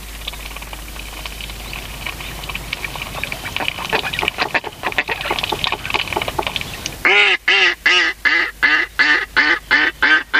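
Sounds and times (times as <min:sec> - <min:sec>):
faint chattering calls: 0:00.2 - 0:07.4
mallard quacking: 0:02.8 - 0:10.3.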